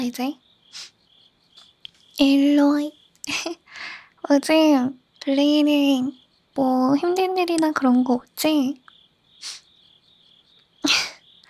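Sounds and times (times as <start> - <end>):
speech: 0.0 - 1.0, 2.2 - 8.8, 10.8 - 11.1
high-pitched cricket chirping: 0.0 - 11.4
short loud sneeze-like bursts: 0.7 - 1.0, 9.4 - 9.7.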